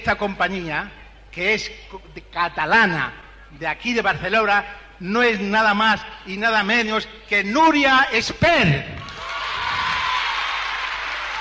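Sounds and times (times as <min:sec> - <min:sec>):
speech: 0:00.0 - 0:09.0
audience applause for a Catalan company from Barcelona: 0:09.0 - 0:11.3.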